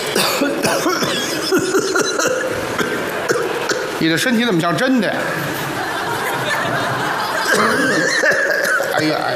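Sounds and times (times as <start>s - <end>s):
person performing theatrical exaggerated coughing: 0.1s - 4.0s, 7.5s - 9.0s
speech: 0.2s - 2.9s, 4.0s - 5.6s, 9.0s - 9.3s
laughter: 5.2s - 9.3s.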